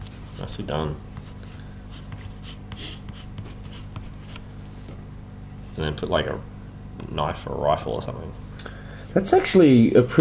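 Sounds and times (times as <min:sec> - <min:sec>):
speech: 0:00.4 - 0:01.1, 0:05.8 - 0:08.4, 0:09.2 - 0:10.1
pencil drawing on paper: 0:01.2 - 0:04.4.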